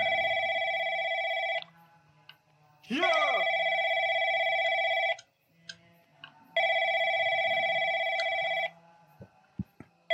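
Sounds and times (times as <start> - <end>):
telephone ringing with electronic trill: 0.0 - 1.7, 3.1 - 5.3, 6.6 - 8.8
speech: 2.9 - 3.1.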